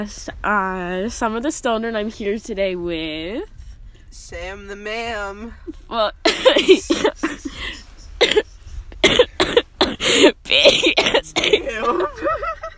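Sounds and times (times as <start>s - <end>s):
speech: 0.0s - 3.5s, 4.1s - 7.8s
sick person coughing: 6.3s - 7.6s, 8.2s - 12.2s
laughter: 6.3s - 7.9s, 11.6s - 12.7s.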